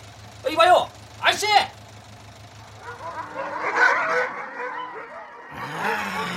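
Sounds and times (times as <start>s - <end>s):
speech: 0.6s - 1.7s
several dogs barking at a dog farm: 2.6s - 6.3s.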